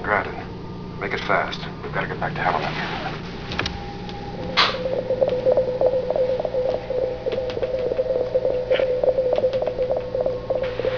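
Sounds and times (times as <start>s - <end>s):
low drone: 0.0s - 10.9s
speech: 1.0s - 3.2s
rapid regular clicking pulses: 3.5s - 10.9s
steady electronic sine wave test tone from a computer console: 3.7s - 10.9s.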